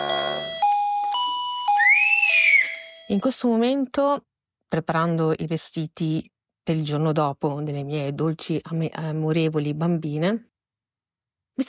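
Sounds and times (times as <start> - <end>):
electronic doorbell chiming: 0.0 - 3.4
speech: 3.1 - 10.5.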